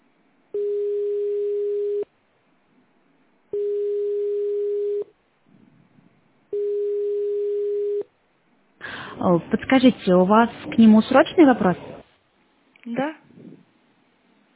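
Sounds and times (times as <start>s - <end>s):
telephone ringback tone while a call connects: 0.6s - 2.1s, 3.6s - 5.1s, 6.5s - 8.1s
speech: 9.3s - 12.0s, 12.8s - 13.2s.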